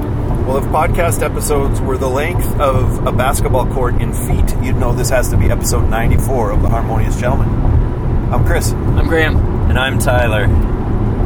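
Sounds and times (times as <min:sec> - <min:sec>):
car interior road noise on highway: 0:00.0 - 0:11.2
speech: 0:00.5 - 0:07.7, 0:08.3 - 0:10.7.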